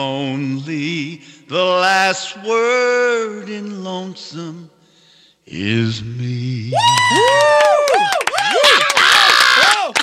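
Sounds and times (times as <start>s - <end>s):
speech: 0.0s - 4.7s, 5.5s - 8.9s
audience yelling encore and cheering: 6.8s - 10.0s.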